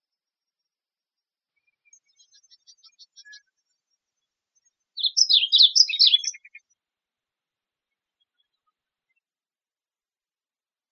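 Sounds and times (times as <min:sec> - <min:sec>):
varied bunting singing in Arizona: 0:05.0 - 0:06.6.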